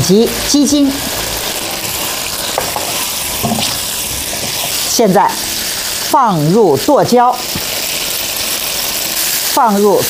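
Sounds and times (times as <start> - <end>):
stir-fry sizzling with soy sauce and oyster sauce in a hot pan: 0.0 - 10.0
speech: 0.1 - 1.3, 5.0 - 5.5, 6.1 - 7.6, 9.6 - 10.0
stirring strokes scraping a hot pan: 1.0 - 5.0.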